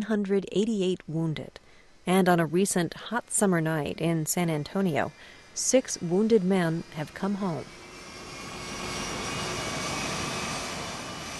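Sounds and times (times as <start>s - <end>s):
speech: 0.0s - 7.8s
C-17 cargo plane jet engines roaring while landing: 6.0s - 11.3s.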